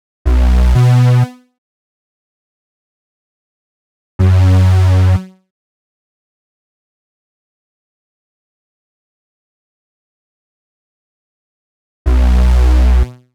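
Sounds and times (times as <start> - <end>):
bass in B minor: 0.3 - 1.3, 4.2 - 5.2, 12.1 - 13.1.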